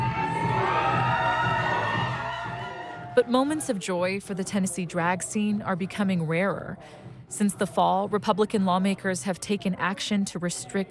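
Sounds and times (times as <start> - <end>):
large crowd cheering, laughing and shrieking at a drag event: 0.0 - 3.8
speech: 3.2 - 10.8.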